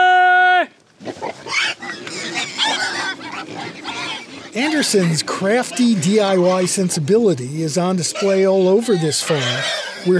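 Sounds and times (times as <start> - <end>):
pigs squealing and grunting on a pig farm on Brannan Island along the San Joaquin River: 1.0 - 10.1
speech: 4.6 - 10.1.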